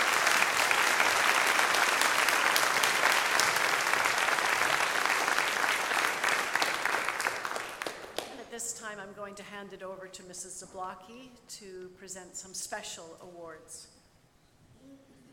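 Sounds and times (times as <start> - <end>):
audience applause: 0.0 - 8.4
speech: 9.4 - 14.0.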